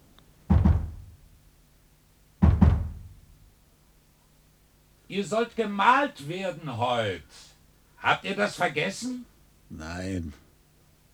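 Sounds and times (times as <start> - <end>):
dull low knocking: 0.5 - 1.4, 2.4 - 3.4
speech: 5.1 - 10.4.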